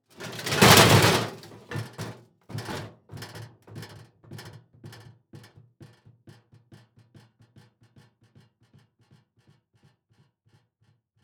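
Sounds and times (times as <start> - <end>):
object rocking on cement: 0.1 - 2.9
metal object hitting cement: 0.2 - 1.8.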